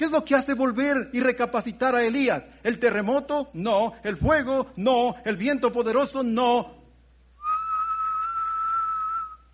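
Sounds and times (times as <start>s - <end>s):
speech: 0.0s - 6.8s
soft gentle whistle: 7.4s - 9.5s.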